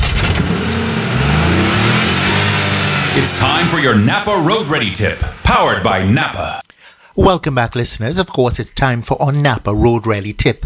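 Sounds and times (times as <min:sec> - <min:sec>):
car engine starting and revving: 0:00.0 - 0:06.1
speech: 0:03.2 - 0:06.6, 0:07.2 - 0:10.6.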